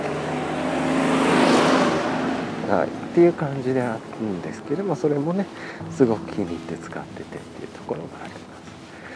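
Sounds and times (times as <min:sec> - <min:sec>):
car driving past with engine and tire noise: 0:00.0 - 0:04.5
speech: 0:02.7 - 0:08.5.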